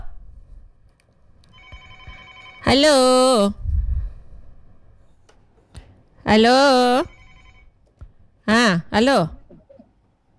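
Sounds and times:
low noise: 0.0s - 10.3s
faint telephone ringing for an incoming call: 1.5s - 3.6s, 6.3s - 7.8s
speech: 2.7s - 3.6s, 6.3s - 7.1s, 8.5s - 9.4s.

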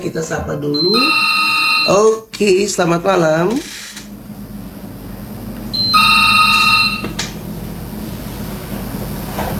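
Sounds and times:
speech: 0.0s - 4.0s
low hum: 0.0s - 9.5s
telephone ringing for an incoming call with a bright electronic tone: 0.8s - 2.2s, 5.7s - 7.2s.

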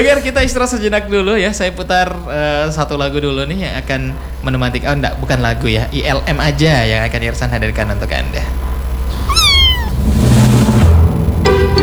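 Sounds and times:
speech: 0.0s - 8.6s
low rumble: 1.7s - 11.5s
cat meowing: 9.1s - 10.2s.

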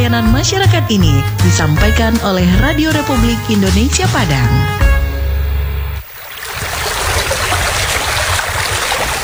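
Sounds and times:
speech: 0.1s - 4.9s
flowing river stream water rushing: 6.0s - 9.2s.

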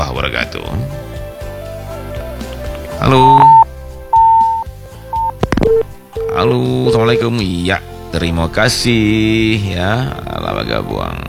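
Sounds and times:
speech: 0.2s - 1.0s, 3.0s - 3.4s, 6.4s - 11.2s
telephone line beeps as an incoming call is received: 3.1s - 4.6s, 5.2s - 7.4s.

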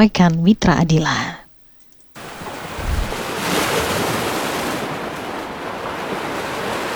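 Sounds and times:
speech: 0.0s - 1.4s
low rumble of wind at the microphone: 2.2s - 6.9s
sea waves breaking on the shore of the north coast of Tuban Indonesia: 2.2s - 6.9s.

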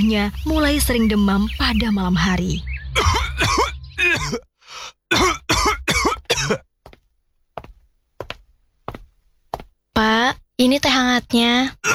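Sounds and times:
speech: 0.0s - 2.7s, 3.4s - 5.4s, 10.0s - 11.9s
father clearing his throat: 3.0s - 4.5s, 5.1s - 6.6s
father with persistent cough coughing: 3.0s - 4.5s, 5.1s - 6.7s.

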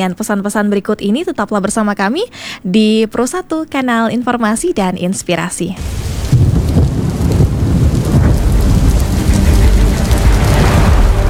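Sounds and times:
speech: 0.0s - 6.1s
deep rolling rumbles of thunder: 5.8s - 11.2s
heavy rain pouring in a thunderstorm: 5.8s - 11.2s.

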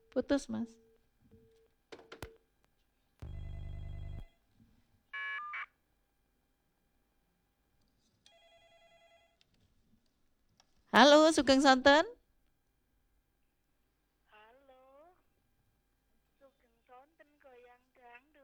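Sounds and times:
speech: 0.2s - 0.8s, 11.0s - 12.2s
telephone electronic tone bursts: 3.2s - 4.2s.

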